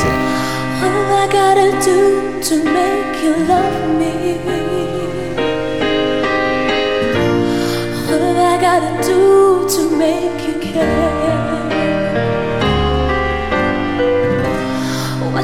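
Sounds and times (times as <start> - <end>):
woman singing a cover of a slow emotional pop ballad: 0.0 - 6.1, 7.2 - 12.5, 14.6 - 15.4
full sustained instrumental backing: 0.0 - 15.4.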